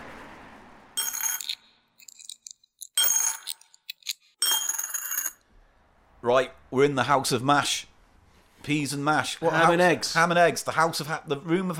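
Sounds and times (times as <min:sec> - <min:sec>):
keys jingling: 0:01.0 - 0:05.4
speech: 0:06.2 - 0:07.9, 0:08.6 - 0:11.7.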